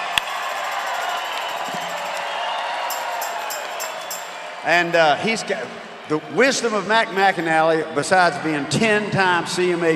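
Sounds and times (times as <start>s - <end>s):
whoops: 0.0s - 4.6s
audience applause: 0.0s - 5.4s
audience cheering: 0.0s - 8.8s
speech: 4.6s - 9.9s.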